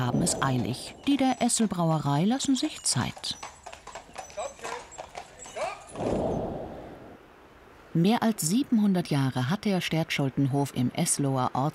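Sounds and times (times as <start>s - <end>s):
speech: 0.0s - 3.6s, 8.0s - 11.7s
horses' hooves clip-clopping: 0.0s - 6.2s.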